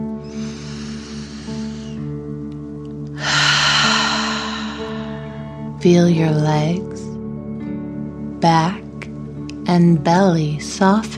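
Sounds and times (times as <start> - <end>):
deep dragon breath in and out through the mouth: 0.2 - 2.1, 3.2 - 5.7
speech: 5.8 - 7.0, 9.7 - 11.1.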